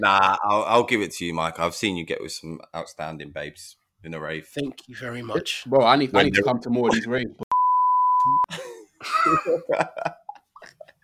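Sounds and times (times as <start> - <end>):
speech: 0.0 - 7.5, 8.2 - 10.2
censor bleep tone: 7.5 - 8.5
people laughing and coughing: 8.5 - 11.0.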